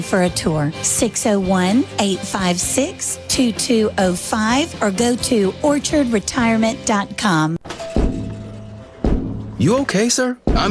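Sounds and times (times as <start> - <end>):
speech: 0.0 - 7.6, 9.6 - 10.6
head banging against a store window: 9.0 - 9.6.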